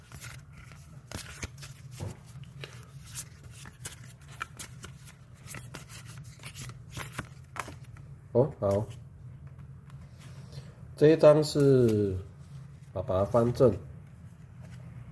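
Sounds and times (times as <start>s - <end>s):
deck of fortune cards being shuffled: 0.0s - 8.1s
speech: 8.4s - 9.0s, 11.0s - 12.3s, 13.0s - 13.9s.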